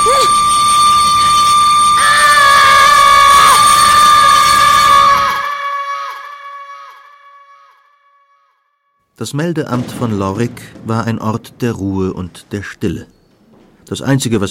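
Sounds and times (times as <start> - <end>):
train's shrill whistle: 0.0 - 8.6
speech: 9.2 - 13.2, 13.9 - 14.4.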